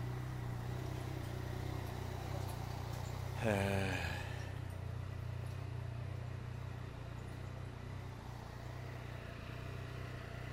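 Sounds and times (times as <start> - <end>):
motorcycle engine idling: 0.0 - 10.5
speech: 3.4 - 4.0
man making a short vocal sound: 3.4 - 4.4.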